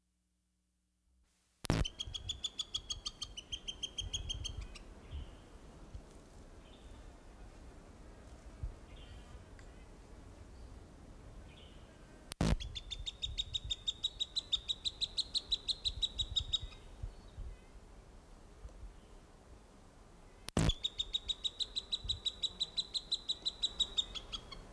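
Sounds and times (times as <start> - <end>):
juvenile Cooper's hawk: 1.7 - 4.9, 12.4 - 16.9, 20.6 - 24.6.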